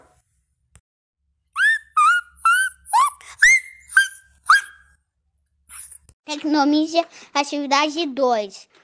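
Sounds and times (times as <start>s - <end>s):
boy imitating his pet dog barking: 1.6s - 4.8s
speech: 6.4s - 8.8s.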